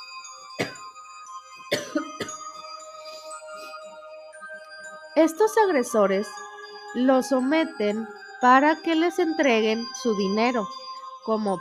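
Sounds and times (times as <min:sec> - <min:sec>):
person coughing: 0:00.6 - 0:00.8, 0:01.7 - 0:02.4
speech: 0:05.2 - 0:11.5.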